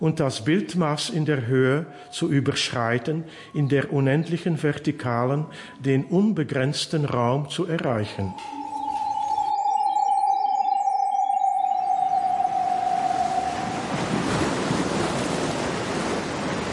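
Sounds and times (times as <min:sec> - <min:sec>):
speech: 0:00.0 - 0:08.6
sustained tone: 0:07.7 - 0:15.6
faint high chirps: 0:07.8 - 0:15.0
ocean surf at a beach promenade in front of a casino: 0:08.5 - 0:16.7.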